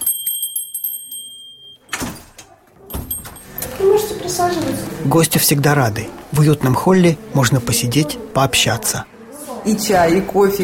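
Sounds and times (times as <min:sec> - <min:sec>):
small door bell chiming as visitor enters a school: 0:00.0 - 0:02.1, 0:02.9 - 0:03.8
speech: 0:04.3 - 0:10.6.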